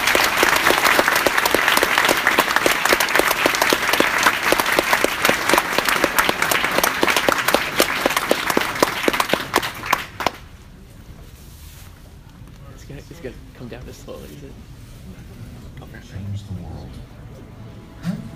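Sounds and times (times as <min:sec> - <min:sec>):
audience applause at the close of an evening event: 0:00.0 - 0:10.5.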